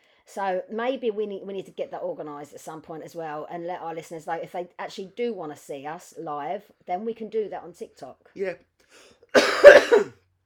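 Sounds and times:
speech: 0.3s - 10.2s
cough: 9.4s - 10.2s.

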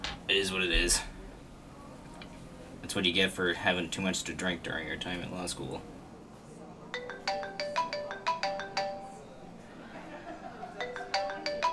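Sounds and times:
low murmur: 0.0s - 11.7s
speech: 0.3s - 1.1s, 2.9s - 6.0s
mobile phone ringtone electronic melody of chiming notes: 6.9s - 9.3s, 10.8s - 11.7s
laughter: 9.7s - 11.2s.

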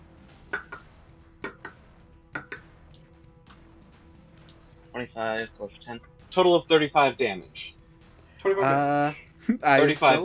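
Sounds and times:
voice imitating a giant clock ticking with mouth clicks: 0.6s - 1.8s, 2.4s - 2.6s
speech: 5.0s - 7.8s, 8.4s - 10.2s.

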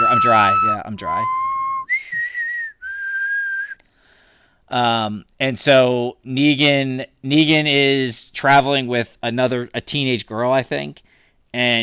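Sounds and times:
person whistling a short two-part signal tune: 0.0s - 3.8s
speech: 0.2s - 1.4s, 4.7s - 11.8s.

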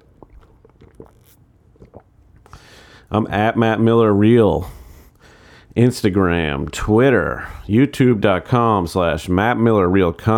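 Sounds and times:
small swallowing sounds: 0.0s - 2.7s
soft mouth clicks: 0.0s - 2.7s
person slurping coffee: 0.0s - 3.1s
speech: 3.1s - 4.8s, 5.8s - 10.3s.

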